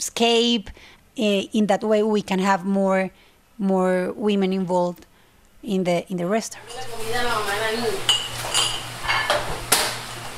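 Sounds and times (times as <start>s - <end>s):
speech: 0.0s - 8.2s
steady low kitchen appliance hum: 6.6s - 10.3s
dishes and cutlery clattering in a small restaurant kitchen: 8.1s - 9.8s.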